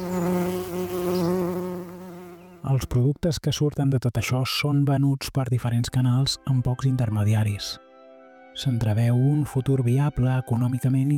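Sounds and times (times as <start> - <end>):
wild pollinating insects buzzing around flowers: 0.0 - 2.8
speech: 2.7 - 7.8, 8.6 - 11.1.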